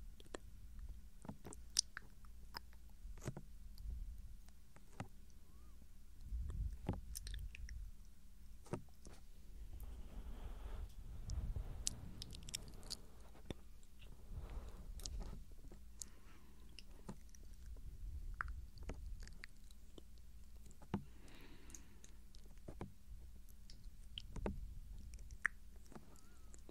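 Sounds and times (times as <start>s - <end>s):
low steady rumble: 0.0s - 26.6s
soft rustling: 0.0s - 26.6s
moist mouth clicks and smacks: 0.2s - 3.4s, 6.2s - 9.2s, 11.2s - 14.1s, 14.9s - 21.0s, 21.7s - 26.6s.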